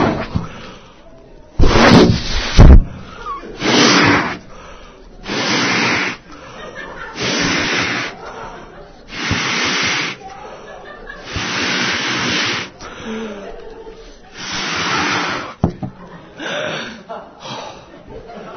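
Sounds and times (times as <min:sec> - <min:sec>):
balloon blown up by mouth: 0:01.6 - 0:04.5, 0:05.2 - 0:06.4, 0:07.1 - 0:08.3, 0:08.9 - 0:10.3, 0:11.2 - 0:13.2, 0:14.3 - 0:15.7
laughter: 0:03.1 - 0:04.4, 0:05.2 - 0:18.5.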